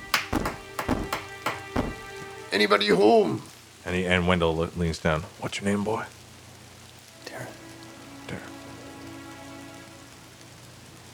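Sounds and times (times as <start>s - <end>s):
knocking on a door: 0.0s - 2.3s
speech: 2.6s - 6.2s.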